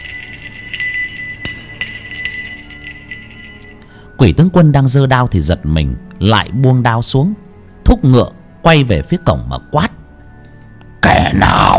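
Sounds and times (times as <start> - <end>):
bell jingling and clanging: 0.0 - 3.9
speech: 4.2 - 9.9.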